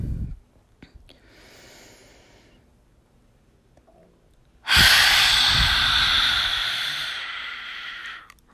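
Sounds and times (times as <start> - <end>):
forceful breath pushed out through an open mouth during a breathing exercise: 4.7 - 8.3.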